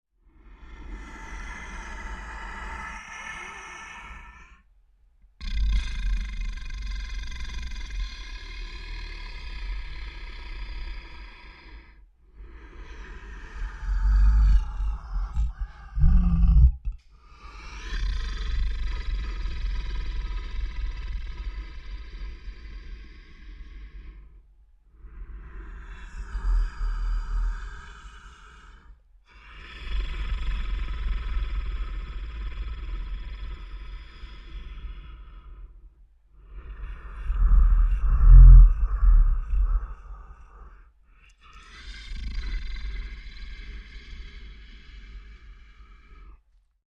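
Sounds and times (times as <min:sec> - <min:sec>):
large creature breathing calmly at rest: 0:00.3 - 0:04.7, 0:05.4 - 0:46.6.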